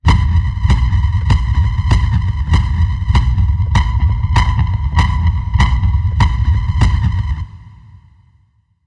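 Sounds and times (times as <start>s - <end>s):
alien heartbeat: 0.0s - 7.5s.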